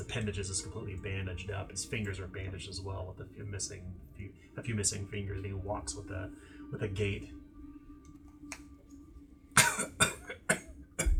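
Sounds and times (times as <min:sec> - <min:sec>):
speech: 0:00.1 - 0:07.4
man coughing in a harsh rasping fit: 0:09.6 - 0:10.7.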